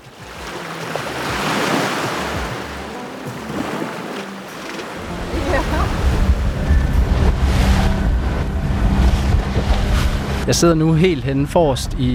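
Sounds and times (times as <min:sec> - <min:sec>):
rushing ocean water: 0:00.0 - 0:10.9
speedboat engine rumble on high ocean waves: 0:00.0 - 0:12.1
speedboat pounding across high ocean waves: 0:00.0 - 0:12.1
wind buffeting the microphone: 0:05.0 - 0:12.1
speech: 0:10.5 - 0:12.1.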